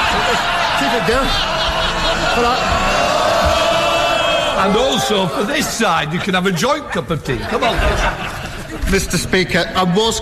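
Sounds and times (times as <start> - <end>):
Members of Parliament cheering and shouting in a parliamentary chamber: 0.0 - 5.7
laughter: 0.0 - 10.1
speech: 1.0 - 1.6, 2.3 - 3.6, 4.6 - 10.1.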